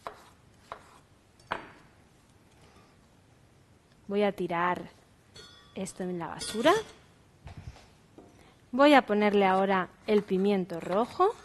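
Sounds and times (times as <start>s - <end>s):
knife chopping cucumber on a cutting board: 0.0s - 1.8s
speech: 4.1s - 5.0s, 5.8s - 7.0s, 8.7s - 11.4s.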